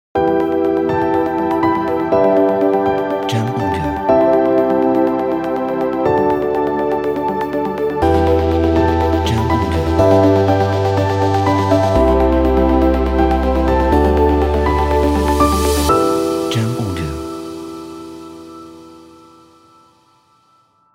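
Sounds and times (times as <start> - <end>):
ambient intro music: 0.2 - 20.9.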